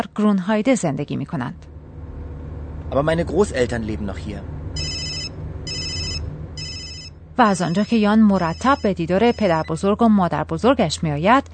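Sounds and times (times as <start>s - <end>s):
speech: 0.0s - 1.7s, 2.9s - 4.6s, 7.4s - 11.5s
low steady rumble: 0.0s - 11.5s
telephone ringing with bright warbling electronic tones: 4.8s - 9.8s.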